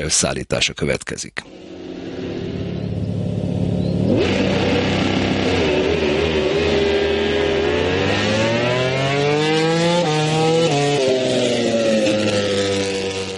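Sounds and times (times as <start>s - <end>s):
speech: 0.0s - 1.7s
MotoGP racing motorcycles revving on the track at the Hungarian Grand Prix: 1.4s - 13.3s.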